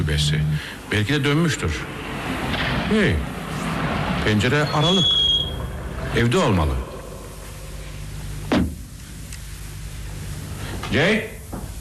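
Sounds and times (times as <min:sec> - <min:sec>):
steady low hum: 0:00.0 - 0:11.7
speech: 0:00.1 - 0:03.4, 0:04.2 - 0:05.2, 0:06.1 - 0:06.8, 0:10.9 - 0:11.4
cabin door hinges creaking: 0:04.5 - 0:07.3.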